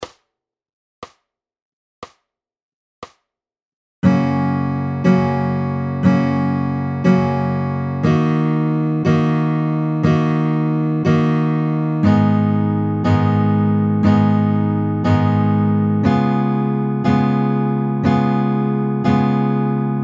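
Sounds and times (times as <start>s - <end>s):
chord progression in F major: 4.0s - 20.0s.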